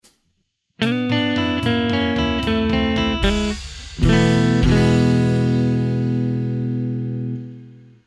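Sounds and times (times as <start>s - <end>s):
blues ending in E: 0.8s - 8.0s.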